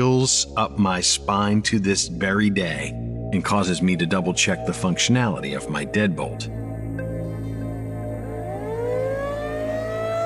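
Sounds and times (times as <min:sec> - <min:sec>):
dense continuous drone: 0:00.0 - 0:10.2
speech: 0:00.2 - 0:06.6
tornado siren howling at night: 0:03.8 - 0:10.2.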